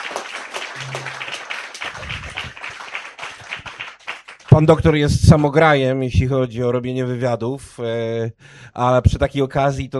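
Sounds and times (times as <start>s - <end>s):
audience applause: 0.0s - 4.7s
speech: 4.6s - 9.9s.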